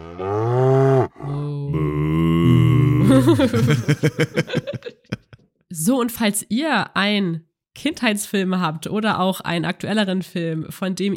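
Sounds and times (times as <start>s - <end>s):
cow mooing loudly: 0.0s - 2.2s
speech: 0.2s - 0.6s, 1.7s - 2.7s, 3.3s - 5.0s, 5.8s - 11.1s
laughter: 2.9s - 5.4s.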